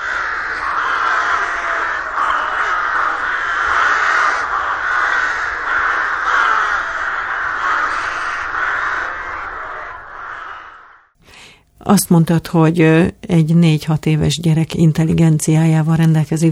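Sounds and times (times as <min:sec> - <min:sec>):
rook colony cawing: 0:00.0 - 0:11.5
speech: 0:11.9 - 0:16.5.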